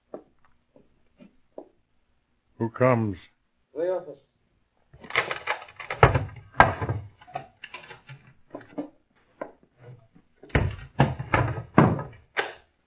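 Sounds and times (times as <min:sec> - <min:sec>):
speech: 0:02.6 - 0:03.3
heavy wooden door opened and barred with knocks, thuds and scraping: 0:05.0 - 0:08.9, 0:10.4 - 0:12.6.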